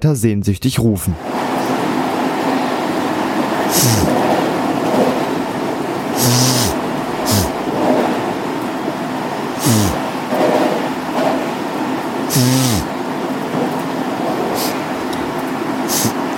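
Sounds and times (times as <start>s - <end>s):
speech: 0.0s - 1.5s, 3.7s - 4.3s
steady rumbling inside a moving train: 1.2s - 16.3s
brief hissing bursts in a moving train: 3.6s - 4.2s, 6.1s - 7.7s, 9.5s - 10.3s, 12.3s - 13.0s, 14.5s - 14.9s, 15.8s - 16.3s.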